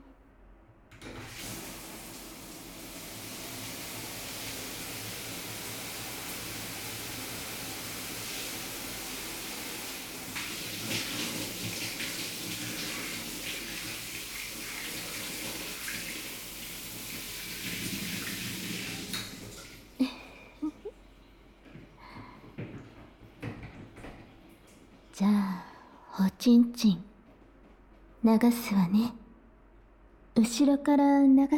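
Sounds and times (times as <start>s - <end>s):
shower water spraying and splashing: 1.2s - 20.0s
speech: 26.5s - 27.1s, 28.3s - 29.2s, 30.4s - 31.5s.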